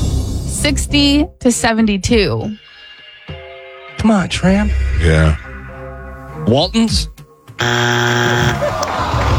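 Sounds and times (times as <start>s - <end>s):
speech: 0.6s - 2.7s, 4.0s - 5.4s, 6.4s - 9.1s
game show time-up buzzer: 7.6s - 8.8s.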